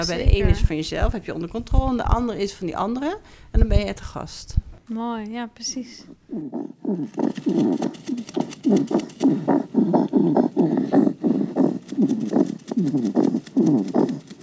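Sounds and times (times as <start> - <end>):
speech: 0.0 - 11.4, 12.0 - 14.4
hedgehog huffing and snuffling: 6.3 - 14.4.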